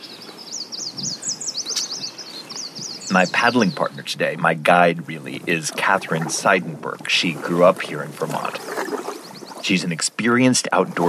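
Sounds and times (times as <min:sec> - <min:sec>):
dense overlapping birdsong along a river: 0:00.0 - 0:11.0
speech: 0:03.1 - 0:08.7, 0:09.7 - 0:11.0.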